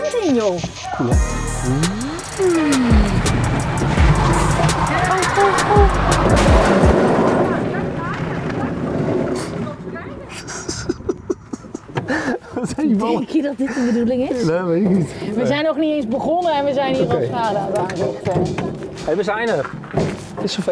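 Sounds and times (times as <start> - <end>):
speech: 0.2 - 3.3, 12.1 - 19.8, 20.4 - 20.6
golf cart motor humming across a golf course: 1.2 - 10.2
rushing wind noise: 2.8 - 12.2
laughter: 10.3 - 14.4.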